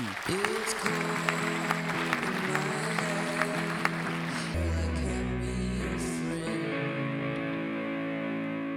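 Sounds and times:
steady applause from an audience: 0:00.0 - 0:04.8
lingering music tones: 0:02.4 - 0:08.7.

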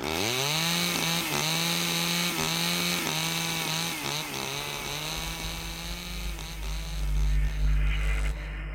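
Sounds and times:
chainsaw cutting down a tree: 0:00.0 - 0:08.6.

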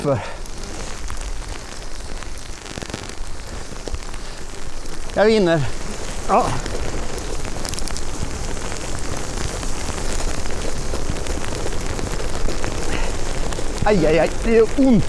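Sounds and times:
speech: 0:00.0 - 0:00.4, 0:05.2 - 0:06.8, 0:13.8 - 0:15.0
hail striking a road: 0:00.0 - 0:15.0.

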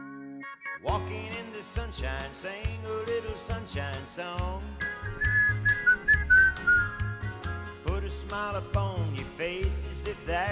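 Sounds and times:
steady bouncy low musical backing: 0:00.0 - 0:10.5
speech: 0:00.8 - 0:05.6, 0:08.1 - 0:10.5
clear bright whistled melody: 0:04.8 - 0:07.7.

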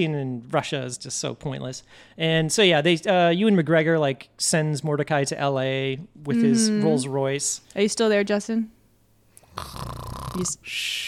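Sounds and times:
speech: 0:00.0 - 0:08.8, 0:09.6 - 0:11.0
person giving a raspy snore: 0:09.4 - 0:11.0.

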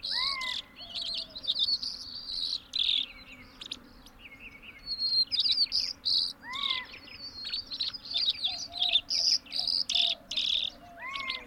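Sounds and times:
white-winged dove cooing: 0:00.0 - 0:01.6, 0:08.1 - 0:11.4
birds chirping: 0:00.0 - 0:11.4
faint insect hum: 0:00.0 - 0:11.4
white-crowned sparrow singing wavering whistles and buzzy trills: 0:00.0 - 0:11.4.

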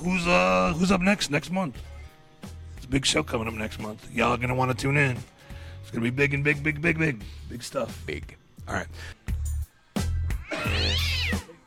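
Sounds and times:
speech: 0:00.0 - 0:02.0, 0:02.9 - 0:09.2
cat meowing and yowling: 0:10.3 - 0:11.5.

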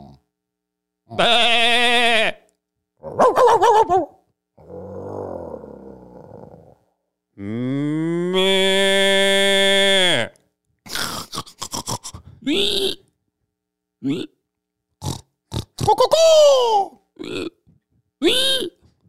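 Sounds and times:
person imitating a pig squealing and grunting: 0:00.0 - 0:00.2, 0:01.1 - 0:02.3, 0:03.0 - 0:06.8, 0:07.4 - 0:13.1, 0:14.0 - 0:14.4, 0:15.0 - 0:17.6, 0:18.2 - 0:18.8.

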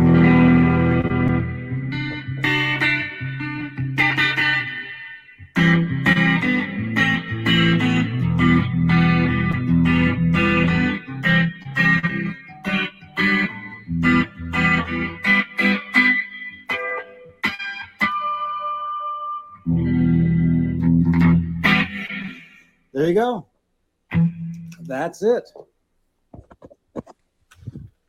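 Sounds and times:
electric guitar through wireless system with distortion, chorus and reverb effects: 0:00.0 - 0:23.1, 0:24.1 - 0:25.1
speech: 0:24.9 - 0:25.7.

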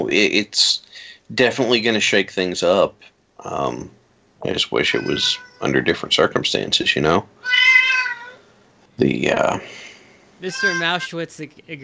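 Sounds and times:
speech: 0:00.0 - 0:07.8, 0:09.0 - 0:09.8, 0:10.4 - 0:11.8
female cat meowing loud and drawn-out: 0:04.8 - 0:06.1, 0:07.4 - 0:08.4, 0:10.4 - 0:11.1.

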